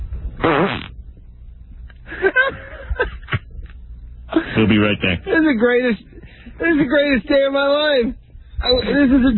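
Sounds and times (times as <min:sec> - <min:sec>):
loud fart: 0:00.4 - 0:01.0
speech: 0:04.6 - 0:09.3.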